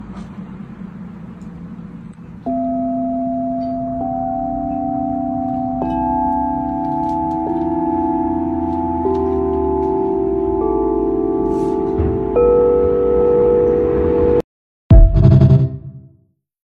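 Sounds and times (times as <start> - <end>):
set of seven chakra alchemy crystal singing bowls: 2.4 - 14.4.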